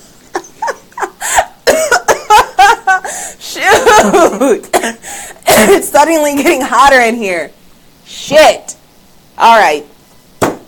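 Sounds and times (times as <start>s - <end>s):
person coughing: 1.2s - 2.4s, 3.8s - 5.8s
speech: 4.0s - 5.0s, 5.6s - 8.8s, 9.4s - 9.9s.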